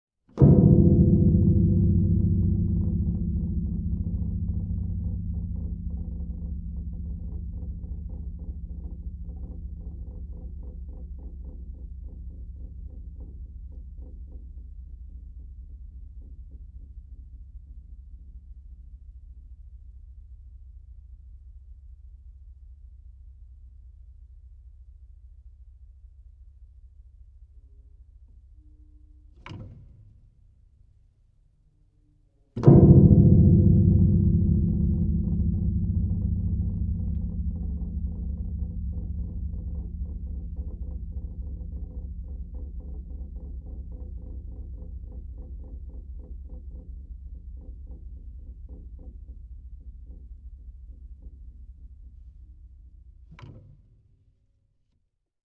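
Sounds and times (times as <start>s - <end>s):
very low piano note: 0.4s - 11.0s, 32.6s - 44.3s.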